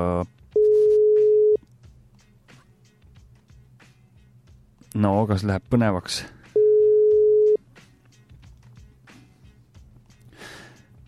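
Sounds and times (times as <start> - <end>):
ringback tone of a phone call: 0.6 - 1.6, 6.6 - 7.6
speech: 5.1 - 6.4.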